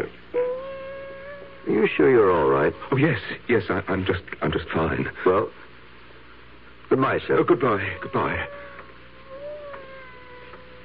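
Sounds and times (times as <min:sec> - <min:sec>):
quiet room hum: 0:00.0 - 0:10.8
cat meowing behind a wall: 0:00.4 - 0:03.0, 0:07.6 - 0:10.8
speech: 0:01.7 - 0:05.6, 0:06.9 - 0:08.7.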